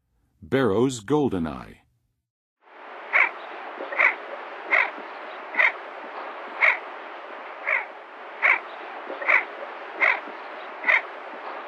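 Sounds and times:
Barrow's goldeneye calling: 3.1s - 5.8s, 6.4s - 6.9s, 7.6s - 11.6s.

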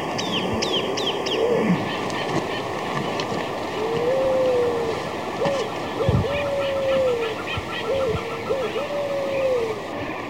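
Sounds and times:
Marañón pigeon cooing in Ecuador: 0.2s - 2.4s, 3.7s - 10.2s.

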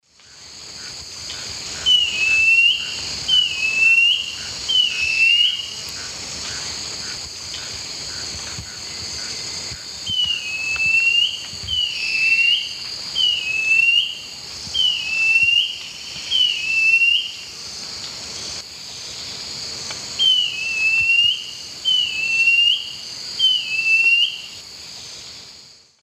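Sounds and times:
Laniocera hypopyrra song in the Eastern Lowlands of South America: 1.3s - 17.5s, 20.2s - 24.6s.

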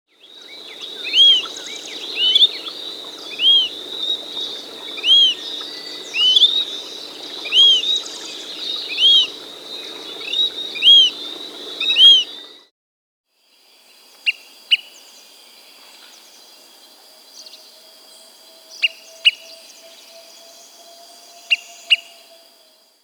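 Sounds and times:
Greater Pewee Contopus fumigatus calling in the Andes of South America: 0.6s - 12.5s, 18.5s - 22.6s.

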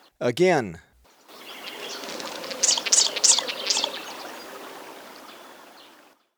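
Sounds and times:
speech: 0.2s - 0.9s
steady rush of running water in Ecuador: 1.2s - 6.2s
subtropical doradito giving high buzzy notes in Ecuador: 1.3s - 6.1s.

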